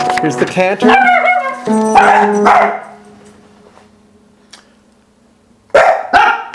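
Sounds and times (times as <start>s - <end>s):
speech: 0.2s - 2.8s
dog barking: 0.9s - 3.0s, 5.7s - 6.5s.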